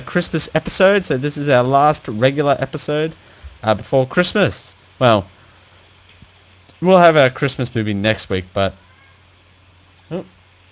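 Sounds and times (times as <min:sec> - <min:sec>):
hum: 0:00.0 - 0:10.6
speech: 0:00.1 - 0:05.4, 0:06.8 - 0:08.8, 0:10.1 - 0:10.4
cat meowing: 0:08.7 - 0:09.3.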